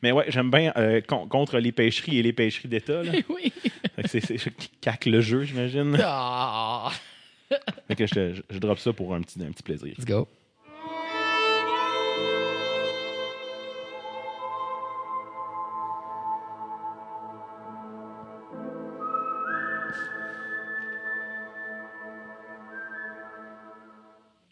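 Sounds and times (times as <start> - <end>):
speech: 0.0 - 10.4
laughter: 3.0 - 4.5, 6.9 - 8.3
full instrumental backing music: 10.6 - 24.4
person whistling a slow lonesome western-style melody: 18.9 - 24.2.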